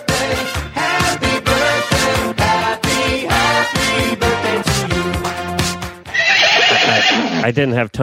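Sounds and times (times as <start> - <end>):
steady rhythmic musical backing: 0.0 - 6.2
loud horse whinny: 6.1 - 7.5.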